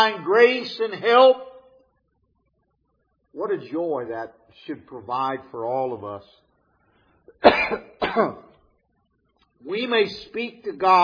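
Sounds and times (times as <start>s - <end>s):
speech: 0.0s - 1.5s, 3.4s - 6.4s, 7.4s - 8.5s, 9.6s - 11.0s
coughing: 7.3s - 8.7s.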